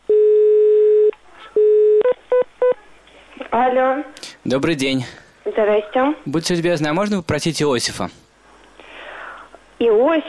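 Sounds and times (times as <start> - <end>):
telephone line tones while a call is being placed: 0.1 - 2.8
speech: 3.5 - 8.2, 9.8 - 10.2.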